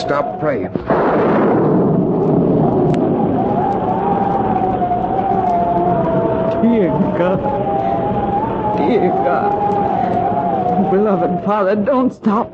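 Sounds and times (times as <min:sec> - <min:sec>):
speech: 0:00.0 - 0:02.1, 0:06.6 - 0:07.8, 0:08.8 - 0:09.8, 0:10.8 - 0:12.5
thunder of an approaching storm: 0:00.0 - 0:12.5
thin wavering whistle-like tone: 0:02.1 - 0:12.5.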